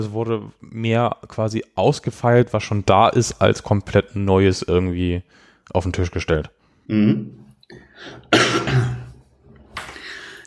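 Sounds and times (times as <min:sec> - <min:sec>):
speech: 0:00.0 - 0:09.0
person coughing: 0:08.0 - 0:09.2.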